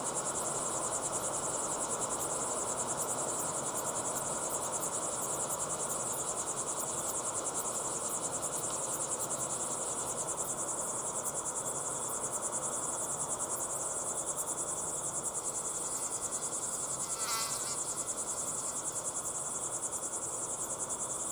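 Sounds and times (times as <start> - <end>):
crickets chirping at sunset in the Timanfaya pyroclastic desert on Lanzarote: 0.0 - 21.3
brief rustling: 15.6 - 18.9.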